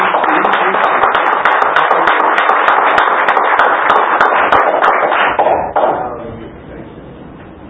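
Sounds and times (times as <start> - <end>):
audience applauding: 0.0 - 6.0.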